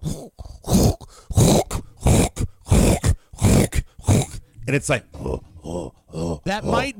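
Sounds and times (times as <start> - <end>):
person mimicking a dog's reverse sneeze: 0.0 - 4.4
speech: 4.7 - 6.9.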